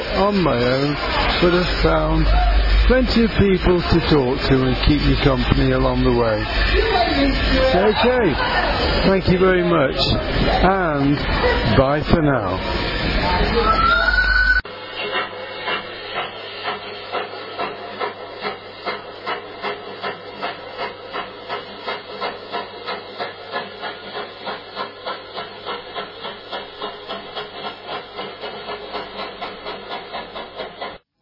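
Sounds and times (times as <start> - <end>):
steam locomotive hissing and chuffing: 0.0 - 31.1
speech: 0.2 - 13.9.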